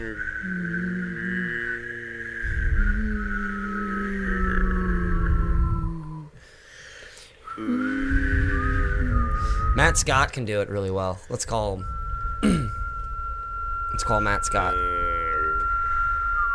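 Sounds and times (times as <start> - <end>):
speech: 0.0 - 0.8, 9.9 - 12.8, 14.1 - 15.0
person humming a buzzing low hum: 0.0 - 6.4, 7.5 - 9.8, 12.4 - 13.0, 14.1 - 16.5
person whistling a steady high note: 0.0 - 6.4, 7.4 - 10.4, 11.5 - 16.5.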